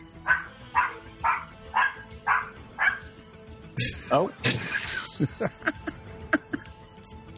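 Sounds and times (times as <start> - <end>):
dog barking: 0.2 - 3.1
laughter: 3.8 - 6.8
speech: 4.1 - 4.6, 5.2 - 5.7.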